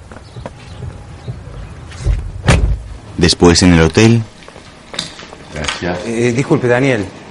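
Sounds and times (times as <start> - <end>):
faint shuffling movement: 0.0 - 6.2
car door opening clunk: 2.0 - 2.9
speech: 3.2 - 4.3, 5.8 - 7.2.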